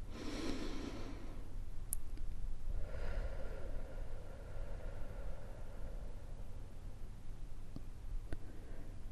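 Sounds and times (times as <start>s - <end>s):
slow deep breaths in through the nose and out through the mouth: 0.0s - 1.6s, 2.7s - 7.2s, 8.4s - 9.1s
low steady hum: 0.0s - 9.1s.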